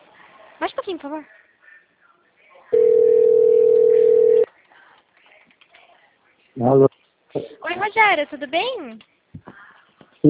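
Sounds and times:
speech: 0:00.6 - 0:01.4, 0:06.6 - 0:09.1
telephone dial tone of an outgoing phone call: 0:02.8 - 0:04.5.

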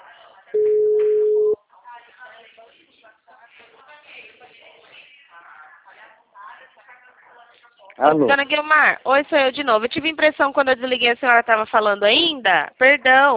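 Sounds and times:
ringback tone of an outgoing telephone call: 0:00.6 - 0:01.6
speech: 0:08.0 - 0:13.3.

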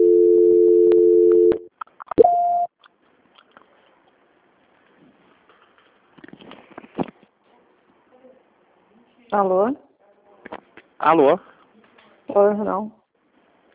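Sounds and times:
telephone call transfer tones on a bank's line: 0:00.0 - 0:01.6
speech: 0:09.3 - 0:09.8, 0:11.0 - 0:11.5, 0:12.4 - 0:13.0.

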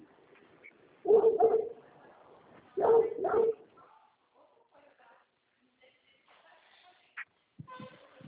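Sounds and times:
dog barking: 0:01.1 - 0:01.8, 0:02.8 - 0:04.7
dog yipping: 0:01.1 - 0:01.8, 0:02.8 - 0:03.6.

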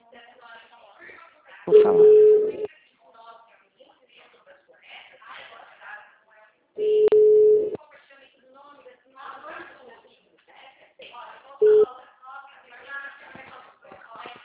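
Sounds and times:
speech: 0:01.7 - 0:02.2
telephone busy tone after a dropped call: 0:01.7 - 0:02.7, 0:06.8 - 0:07.8, 0:11.6 - 0:11.9.

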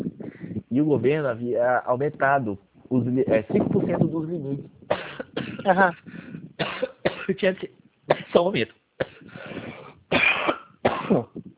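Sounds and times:
speech: 0:00.7 - 0:04.8, 0:05.6 - 0:08.8
dry harsh coughing from a dry throat irritated by rhinitis: 0:04.9 - 0:07.4, 0:08.1 - 0:08.4, 0:09.0 - 0:11.4.

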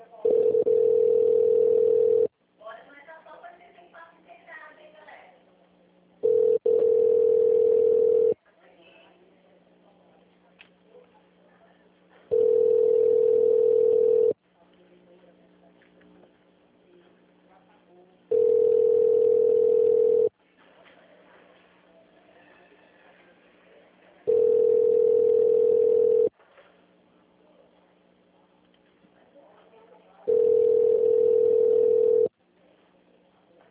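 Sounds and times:
telephone line tone while a call is transferred: 0:00.2 - 0:02.3, 0:06.2 - 0:08.4, 0:12.3 - 0:14.4, 0:18.3 - 0:20.3, 0:24.3 - 0:26.3, 0:30.3 - 0:32.3.

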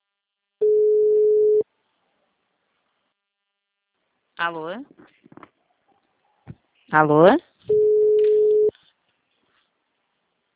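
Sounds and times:
telephone busy signal when calling an engaged number: 0:00.6 - 0:01.6, 0:07.7 - 0:08.7
speech: 0:04.4 - 0:05.5, 0:06.9 - 0:07.8.

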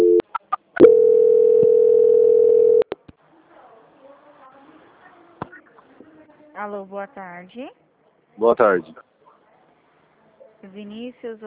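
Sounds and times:
steady mid-pitched telephone call-transfer tone: 0:00.0 - 0:00.2, 0:00.8 - 0:02.9
speech: 0:06.6 - 0:07.8, 0:08.4 - 0:09.1, 0:10.6 - 0:11.4.

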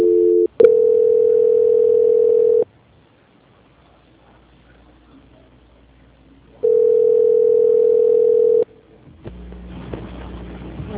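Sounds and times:
steady mid-pitched telephone tone during a call transfer: 0:00.0 - 0:02.7, 0:06.6 - 0:08.7.

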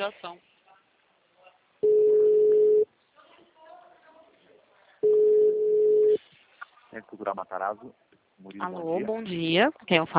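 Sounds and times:
speech: 0:00.0 - 0:00.5, 0:06.9 - 0:10.1
steady mid-pitched telephone line tone while a call is transferred: 0:01.8 - 0:02.9, 0:05.0 - 0:06.2.

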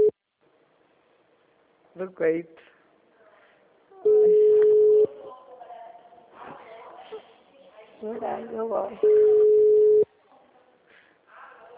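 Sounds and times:
faint low noise: 0:00.0 - 0:11.7
speech: 0:02.0 - 0:02.7, 0:08.0 - 0:09.5
ringback tone on an outgoing telephone call: 0:04.0 - 0:05.1, 0:09.0 - 0:10.0.

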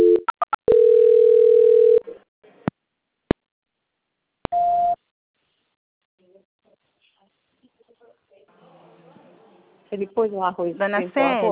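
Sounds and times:
telephone line beeps during a call transfer: 0:00.0 - 0:02.0
speech: 0:10.0 - 0:11.5.

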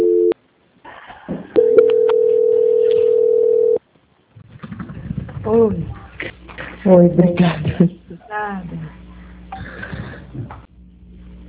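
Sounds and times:
telephone line tone during call transfer after an invalid extension: 0:00.0 - 0:00.4, 0:01.6 - 0:03.8
speech: 0:05.5 - 0:06.0, 0:06.8 - 0:09.0.

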